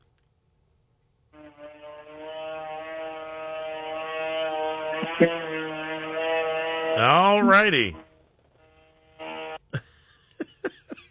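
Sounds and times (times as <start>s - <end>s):
buzzy fart-like noise through a caller's phone line: 1.4s - 9.7s
brief sharp bursts of noise on a phone line: 1.4s - 9.8s
speech: 5.1s - 5.4s, 7.0s - 8.0s
laughter: 9.7s - 11.0s.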